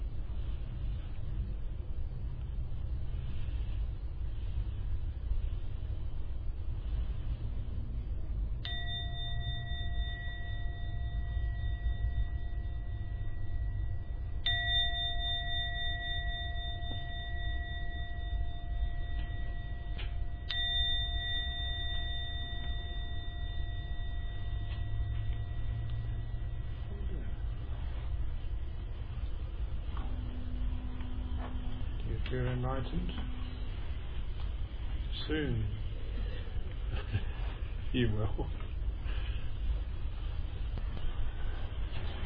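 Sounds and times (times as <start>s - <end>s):
low rumble: 0.0s - 42.2s
meditation gong ringing: 8.6s - 38.3s
speech: 32.6s - 33.6s, 35.3s - 35.8s, 37.9s - 38.6s.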